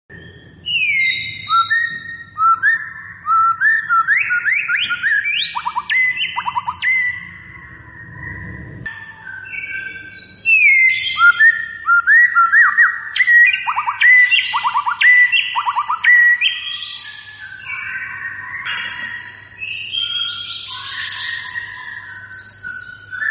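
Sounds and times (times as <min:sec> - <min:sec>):
white-rumped shama song with whistled phrases, upward slides and trills: 0:00.1 - 0:23.2
low rumbling noise: 0:06.6 - 0:08.9.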